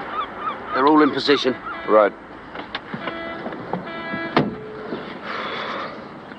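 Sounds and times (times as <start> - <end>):
speech: 0.8 - 2.2
car door clunk as someone gets in the back: 2.5 - 5.2.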